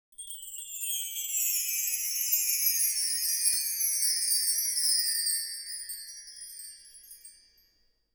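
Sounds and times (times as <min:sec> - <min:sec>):
wind chime: 0:00.1 - 0:08.1.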